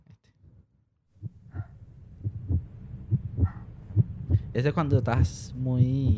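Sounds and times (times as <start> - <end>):
heartbeat sound effect thumping in low pulses: 1.2 - 6.1
speech: 4.6 - 6.1.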